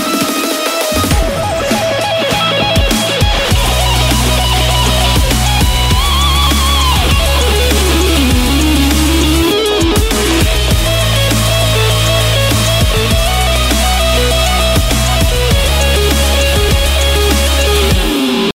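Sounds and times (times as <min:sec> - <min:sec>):
dubstep guitar solo: 0:00.0 - 0:18.5.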